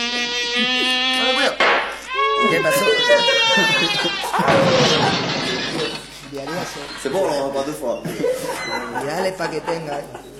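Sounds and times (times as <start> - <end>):
mosquito buzzing: 0.0 - 4.9
laughter: 0.4 - 10.3
speech: 2.4 - 10.3.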